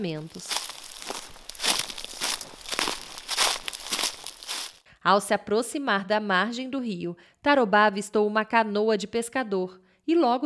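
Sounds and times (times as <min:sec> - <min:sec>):
speech: 0:00.0 - 0:00.7, 0:05.0 - 0:10.4
footsteps of a person walking through a forest crunching dry leaves: 0:00.0 - 0:04.8.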